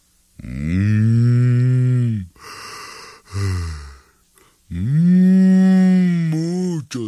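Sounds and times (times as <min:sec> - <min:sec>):
person imitating a spotted cow mooing: 0:00.4 - 0:02.5, 0:03.3 - 0:04.1, 0:04.7 - 0:06.6
breathy sigh: 0:02.1 - 0:04.6.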